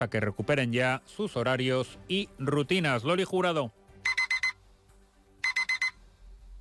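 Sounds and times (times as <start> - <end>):
speech: 0.0 - 4.2
alarm clock beeping in shrill electronic tones: 4.0 - 4.6, 5.4 - 6.0.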